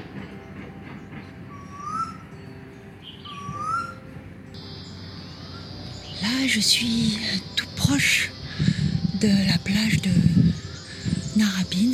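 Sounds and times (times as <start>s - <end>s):
short rising whistled bird calls outdoors: 1.5s - 2.3s, 3.0s - 4.0s, 4.6s - 11.8s
speech: 6.2s - 10.4s, 11.4s - 11.9s.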